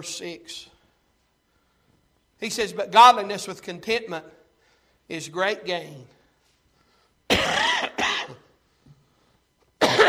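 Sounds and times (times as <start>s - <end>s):
speech: 0.0s - 0.7s, 2.4s - 4.4s, 5.1s - 6.2s
person coughing: 7.3s - 8.6s, 9.8s - 10.0s.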